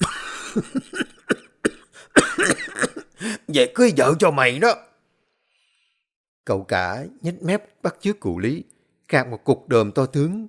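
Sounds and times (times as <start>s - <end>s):
old man coughing: 0.0s - 3.5s
speech: 0.6s - 1.0s, 3.5s - 4.9s, 6.4s - 10.4s.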